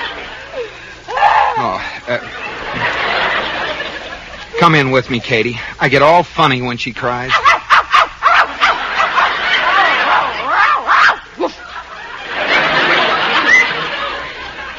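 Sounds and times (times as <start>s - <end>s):
laughter: 0.0s - 5.6s, 7.3s - 14.7s
faint hiss: 0.0s - 14.7s
speech: 2.1s - 2.3s, 4.6s - 7.6s
dog barking and yipping: 7.3s - 9.4s, 10.2s - 11.3s.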